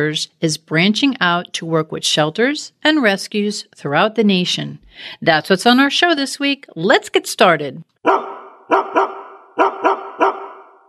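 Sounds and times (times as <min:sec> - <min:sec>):
speech: 0:00.0 - 0:08.2
dog barking: 0:08.0 - 0:10.8.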